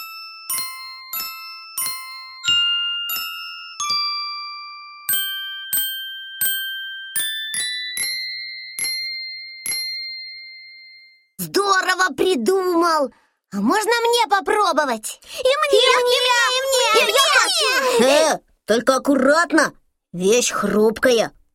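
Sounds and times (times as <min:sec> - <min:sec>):
homemade winter icicle chime instrument ringing: 0:00.0 - 0:11.3
speech: 0:11.6 - 0:21.4.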